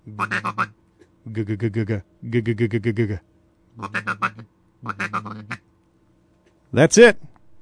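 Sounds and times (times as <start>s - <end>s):
duck call blown in a soft feeding murmur: 0.1s - 0.8s, 3.8s - 5.6s
speech: 0.1s - 5.0s, 6.7s - 7.3s.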